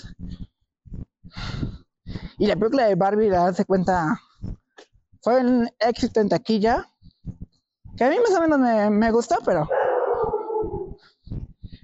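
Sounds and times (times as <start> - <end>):
speech: 2.4 - 4.2, 5.2 - 6.9, 8.0 - 9.8
dogs howling from a nearby house: 9.7 - 11.0.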